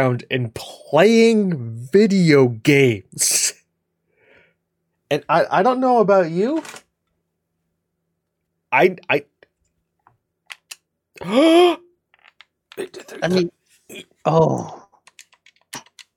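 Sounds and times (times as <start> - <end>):
speech: 0.0 - 3.6, 5.1 - 6.8, 8.7 - 9.3, 11.2 - 11.8, 12.8 - 14.8
loud vocal outbursts and groans: 11.2 - 12.0, 12.8 - 14.9
computer keyboard typing: 15.0 - 16.1.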